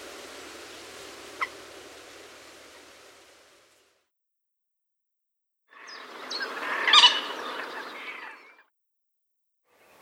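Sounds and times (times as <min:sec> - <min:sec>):
Common moorhen Gallinella harsh sputtering call: 0:05.8 - 0:08.4.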